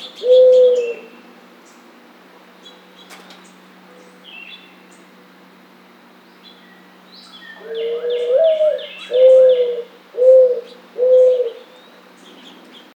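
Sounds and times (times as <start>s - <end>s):
mourning dove cooing: 0.0s - 1.2s, 7.6s - 11.9s
birds chirping: 0.0s - 2.0s, 2.6s - 5.2s, 6.2s - 12.9s.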